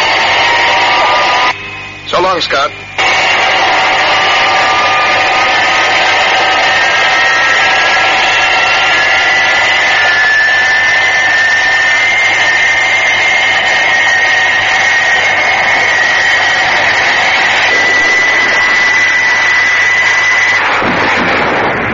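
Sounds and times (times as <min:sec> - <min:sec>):
supersonic jet engine screaming at full power during takeoff: 0:00.0 - 0:21.9
speech: 0:02.4 - 0:02.9.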